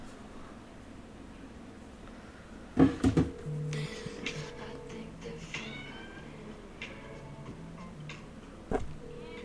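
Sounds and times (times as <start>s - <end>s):
steady tonal electronic hum: 2.8s - 9.4s
phone ringtone made of cat meows: 5.5s - 6.3s.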